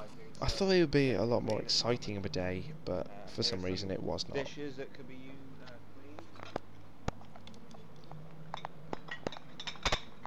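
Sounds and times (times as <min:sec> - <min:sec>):
speech: 0:00.3 - 0:05.4
ceramic and glass dishes clinking on a carried tray: 0:08.5 - 0:10.2.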